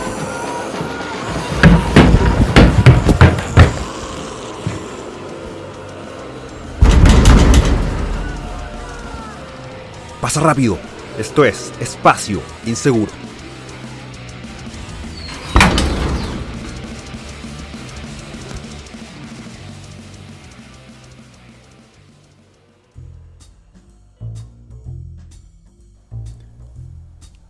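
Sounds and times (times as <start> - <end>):
murky ambient background: 0.0 - 27.4
door slamming shut on entering: 6.8 - 8.4, 15.3 - 16.7
speech: 10.2 - 13.2.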